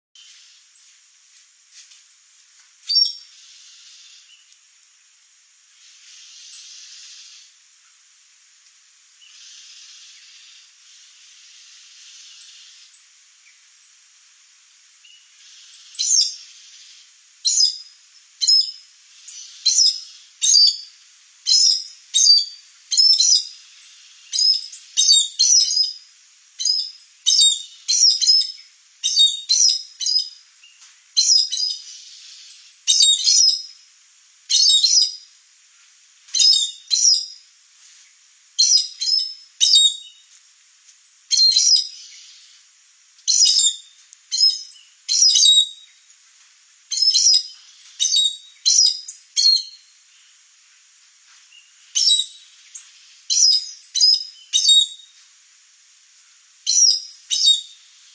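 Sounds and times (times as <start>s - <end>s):
collared aracari calling: 2.9s - 4.5s, 5.8s - 7.6s, 9.2s - 13.0s, 15.1s - 26.0s, 26.6s - 33.8s, 34.5s - 35.2s, 38.6s - 40.2s, 41.3s - 42.6s, 43.3s - 46.0s, 46.9s - 50.3s, 51.6s - 55.0s, 56.7s - 58.1s.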